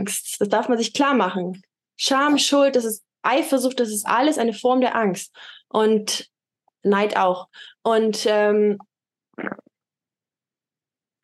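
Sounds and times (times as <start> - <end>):
speech: 0.0 - 9.6
short fart: 9.4 - 9.8.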